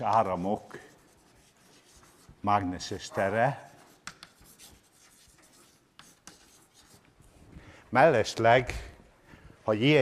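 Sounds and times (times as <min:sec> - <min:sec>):
speech: 0:00.0 - 0:00.9, 0:02.4 - 0:03.7, 0:07.9 - 0:08.9, 0:09.6 - 0:10.0
writing on a board during a physics lecture: 0:00.0 - 0:07.2.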